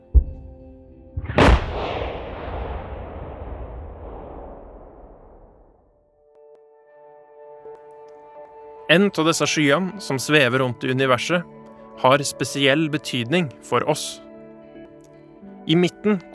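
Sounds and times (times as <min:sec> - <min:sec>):
sharp hit of a supernova explosion sound effect: 0:01.2 - 0:05.7
supernova explosion sound effect boom with hissing rumbling decay: 0:01.2 - 0:05.9
speech: 0:08.9 - 0:14.2, 0:15.7 - 0:16.3.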